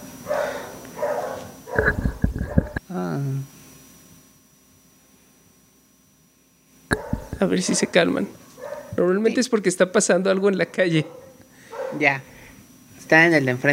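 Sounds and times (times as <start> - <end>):
several dogs barking excitedly: 0.2 - 2.8, 6.9 - 9.0, 10.5 - 12.1
speech: 3.0 - 3.5, 7.4 - 8.4, 9.0 - 11.2, 11.9 - 12.3, 13.1 - 13.7.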